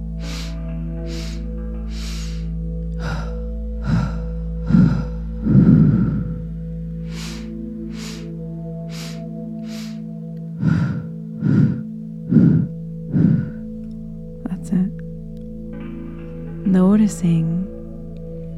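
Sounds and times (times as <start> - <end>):
deep airy breathing: 0.0 - 15.0
constant low humming drone: 0.0 - 18.5
speech: 17.1 - 17.6.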